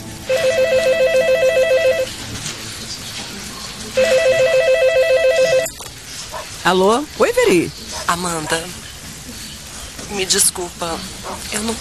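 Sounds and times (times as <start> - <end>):
telephone ringing with warbling electronic tone: 0.2 - 2.2, 4.0 - 5.8
speech: 6.7 - 8.8, 10.1 - 11.8.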